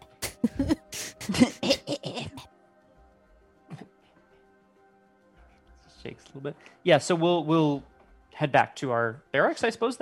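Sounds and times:
person faking a rough throaty cough: 0:00.2 - 0:02.5, 0:03.7 - 0:03.9
speech: 0:06.0 - 0:10.0.

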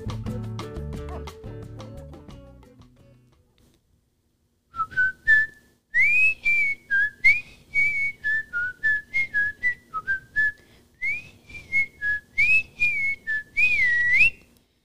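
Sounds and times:
person whistling a bouncy TV theme tune: 0:04.8 - 0:14.4.

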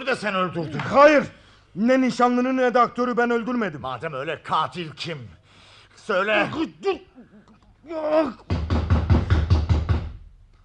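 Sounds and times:
speech: 0:00.1 - 0:05.4, 0:06.0 - 0:08.7
person calling out: 0:06.3 - 0:08.5
police pounding hard on a door: 0:08.5 - 0:10.3.

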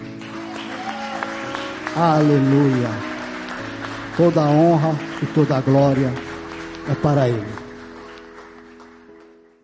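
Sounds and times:
crowd applauding: 0:00.0 - 0:09.6
speech: 0:02.0 - 0:03.1, 0:04.2 - 0:06.2, 0:06.9 - 0:07.6.

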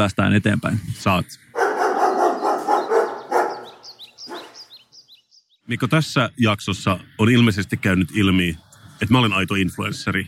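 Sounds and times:
speech: 0:00.0 - 0:01.5, 0:05.7 - 0:10.2
dogs barking: 0:01.5 - 0:04.9.

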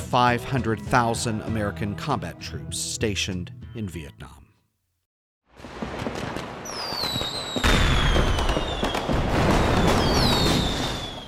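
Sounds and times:
speech: 0:00.1 - 0:04.4
firecrackers popping during holiday celebration: 0:05.6 - 0:11.2
whistling rockets rising overhead: 0:05.9 - 0:11.2.

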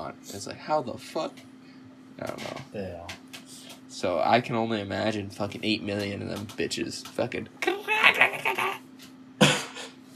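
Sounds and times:
speech: 0:00.2 - 0:01.5, 0:02.2 - 0:03.2, 0:03.9 - 0:07.8
person mimicking a cicada with a raspy pulsing vocal buzz: 0:07.6 - 0:08.9.

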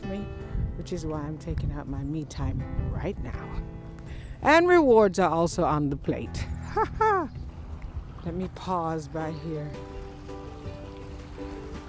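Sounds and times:
speech: 0:00.8 - 0:07.4, 0:08.2 - 0:09.9
small brook flowing over stones in the morning: 0:07.6 - 0:11.8.

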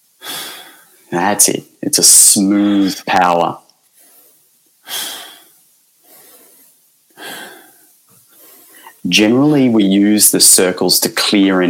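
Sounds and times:
speech: 0:01.1 - 0:03.6, 0:09.1 - 0:11.6
powerful inhalation during breathing exercise: 0:03.9 - 0:09.0.

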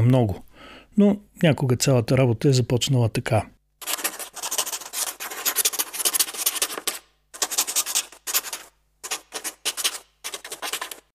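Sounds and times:
speech: 0:00.0 - 0:00.4, 0:01.0 - 0:03.5
quill pen scratching across paper: 0:03.8 - 0:11.1.

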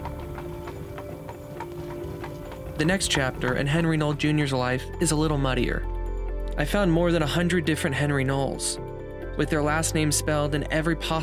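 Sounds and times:
horse-drawn carriage hooves clip-clopping: 0:00.0 - 0:03.7
constant low rumble: 0:00.0 - 0:07.4
speech: 0:02.8 - 0:05.9, 0:06.6 - 0:11.2.

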